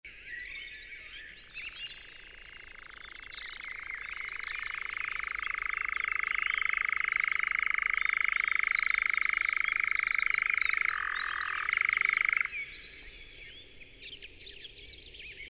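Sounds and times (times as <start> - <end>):
European nightjar Caprimulgus europaeus churring in spring: 2.0 - 12.7.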